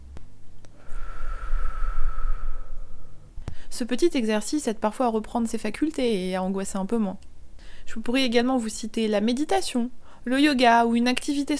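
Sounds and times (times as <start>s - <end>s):
slow deep breath during a guided relaxation exercise: 0.7s - 3.7s, 7.6s - 7.9s
speech: 3.8s - 7.3s, 7.9s - 11.5s.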